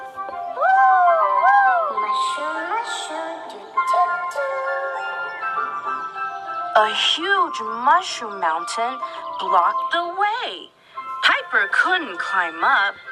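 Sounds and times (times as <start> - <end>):
flute melody: 0.0 - 13.0
soft layered accompaniment: 0.0 - 13.0
speech: 6.8 - 10.8, 11.5 - 13.0.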